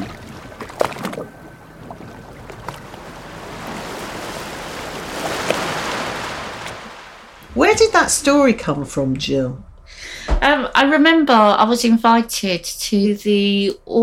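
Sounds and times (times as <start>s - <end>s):
choppy sea waves splashing against the hull of a rickety refugee boat: 0.0s - 10.6s
speech: 7.8s - 9.7s, 10.4s - 14.0s.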